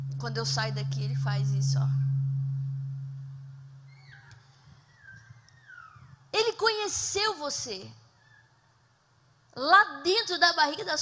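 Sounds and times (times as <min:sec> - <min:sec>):
loud low-pitched microphone feedback tone: 0:00.0 - 0:06.2
speech: 0:00.2 - 0:02.0, 0:06.6 - 0:08.0, 0:09.6 - 0:11.0
faint wavering higher whistles: 0:02.0 - 0:06.3.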